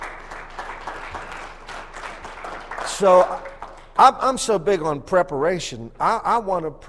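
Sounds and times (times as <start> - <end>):
crowd applauding: 0.0 - 4.1
speech: 3.0 - 6.8.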